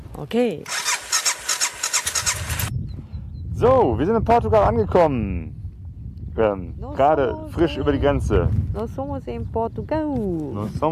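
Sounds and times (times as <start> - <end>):
speech: 0.2 - 0.8, 3.6 - 5.6, 6.4 - 10.8
loaded motorcycle engine starting and idling: 0.6 - 2.8.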